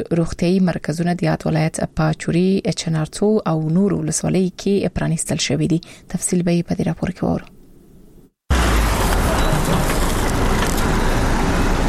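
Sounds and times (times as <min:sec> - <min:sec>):
speech: 0:00.0 - 0:07.6
engine and road rumble: 0:08.5 - 0:11.8
vehicles loaded with medical supplies driving in Urozgan province, Afghanistan: 0:08.5 - 0:11.8.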